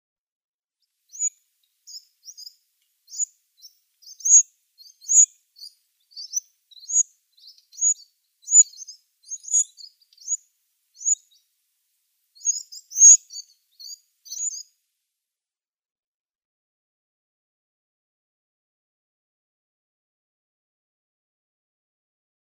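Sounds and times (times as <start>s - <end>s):
Winter Wren nestlings: 1.1s - 1.3s, 1.9s - 10.4s, 11.0s - 11.2s, 12.4s - 14.6s.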